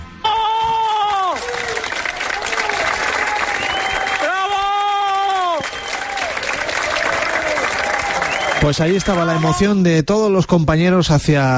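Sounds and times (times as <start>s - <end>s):
long drawn-out cheering shouts: 0.2s - 9.7s
crowd applauding in an indoor clinic hallway: 0.8s - 9.7s
speech: 8.6s - 11.5s.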